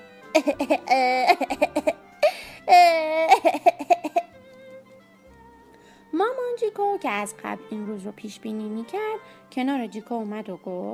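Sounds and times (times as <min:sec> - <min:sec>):
speech: 0:00.4 - 0:02.0, 0:06.6 - 0:10.9
young boy crying with sobs and wails: 0:00.4 - 0:04.3.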